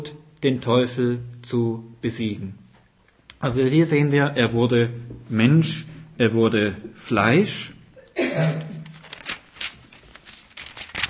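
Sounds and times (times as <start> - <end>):
speech: 0.4 - 2.6, 3.4 - 8.7
thin Bible pages rustling and being flipped: 8.6 - 11.0.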